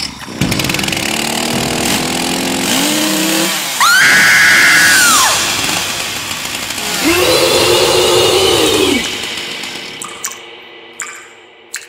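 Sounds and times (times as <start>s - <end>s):
chainsaw: 0.3s - 4.0s, 4.6s - 9.9s.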